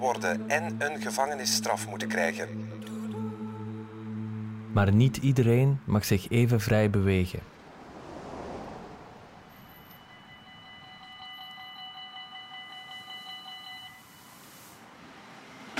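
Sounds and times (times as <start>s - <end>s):
speech: 0.0s - 2.7s, 4.7s - 7.6s
last train pulling into a station: 7.2s - 11.6s.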